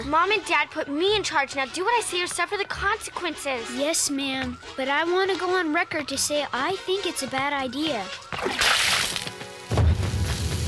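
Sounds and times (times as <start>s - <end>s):
speech: 0.0s - 8.9s
bath water splashing and sloshing onto a television: 8.3s - 10.6s
bucket of bath water whooshing onto a television: 8.4s - 9.2s.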